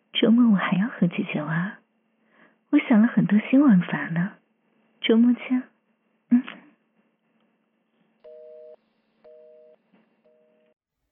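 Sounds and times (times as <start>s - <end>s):
speech: 0.2s - 1.8s, 2.7s - 4.4s, 5.0s - 5.7s
telephone busy tone after a hung-up call: 8.3s - 10.7s.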